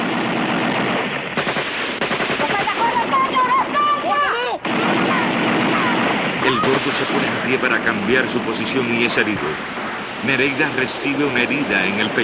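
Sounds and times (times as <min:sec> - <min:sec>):
police gunfire from all directions toward rooftops: 0:00.0 - 0:12.2
speech: 0:06.9 - 0:12.2.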